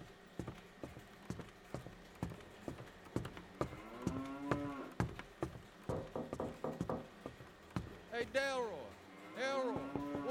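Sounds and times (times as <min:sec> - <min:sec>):
cow mooing: 0:03.7 - 0:04.9, 0:09.1 - 0:10.2
knocking on door: 0:04.1 - 0:08.4
speech: 0:08.2 - 0:10.2.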